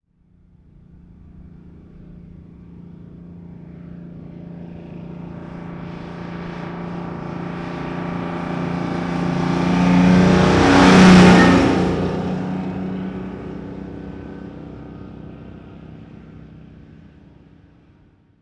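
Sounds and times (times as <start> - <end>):
1948 diesel truck passing fast: 5.0 - 16.0.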